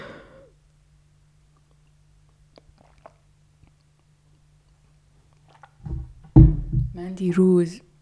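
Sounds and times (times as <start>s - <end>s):
mouth and swallowing sounds: 1.5s - 6.1s
person slurping hot tea: 2.5s - 3.3s, 5.5s - 5.8s
speech: 7.1s - 7.9s.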